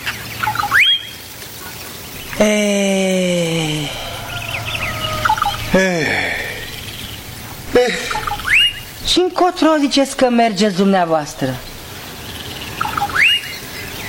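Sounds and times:
speech: 2.4s - 3.0s, 9.2s - 11.7s
turkeys gobbling: 3.3s - 9.2s, 12.7s - 13.6s.

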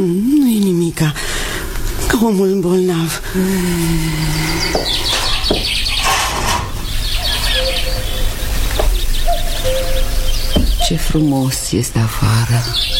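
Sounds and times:
speech: 0.0s - 1.4s, 2.2s - 5.1s, 10.9s - 12.9s
chorus of birds chirping and twittering: 1.3s - 12.9s
cuckoo calling a low two-note phrase: 3.8s - 11.4s, 12.3s - 12.9s.

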